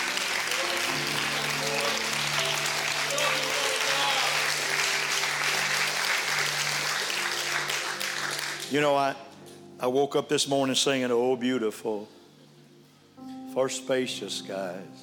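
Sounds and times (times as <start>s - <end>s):
large crowd applauding: 0.0s - 8.7s
low musical tone: 0.0s - 15.0s
speech: 8.7s - 12.2s, 13.6s - 15.0s.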